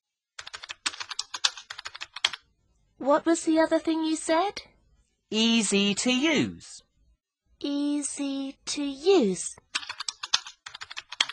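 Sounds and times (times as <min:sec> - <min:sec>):
rapid typing on a computer keyboard: 0:00.4 - 0:02.4, 0:09.6 - 0:11.3
speech: 0:03.0 - 0:04.7, 0:05.3 - 0:06.8, 0:07.6 - 0:09.6.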